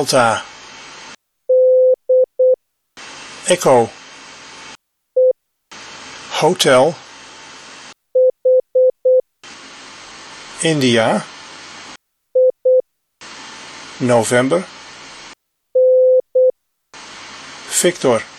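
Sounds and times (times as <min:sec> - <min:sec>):
speech: 0:00.0 - 0:00.5, 0:03.5 - 0:04.0, 0:06.4 - 0:07.0, 0:10.6 - 0:11.3, 0:14.0 - 0:14.8, 0:17.8 - 0:18.3
short and long electronic Morse code beeps of a mid-pitched tone: 0:01.5 - 0:02.6, 0:05.2 - 0:05.4, 0:08.2 - 0:09.2, 0:12.4 - 0:12.8, 0:15.8 - 0:16.5
voice announcing letters in the phonetic alphabet: 0:03.4 - 0:04.0, 0:06.3 - 0:07.0, 0:10.6 - 0:11.4, 0:14.0 - 0:14.8, 0:17.7 - 0:18.3.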